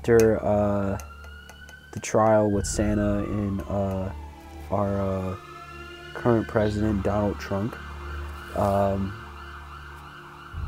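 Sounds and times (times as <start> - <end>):
speech: 0.0 - 1.1, 2.0 - 5.5, 6.2 - 7.9, 8.6 - 9.2
ambulance siren blast: 0.0 - 10.6
steady low hum: 2.5 - 10.6.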